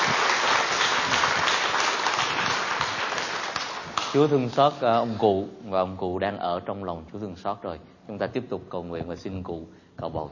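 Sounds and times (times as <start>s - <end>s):
crowd applause: 0.0s - 4.2s
speech: 4.1s - 10.2s.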